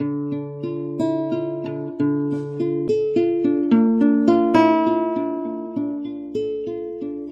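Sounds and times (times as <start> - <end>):
guitar final note: 0.0 - 5.9.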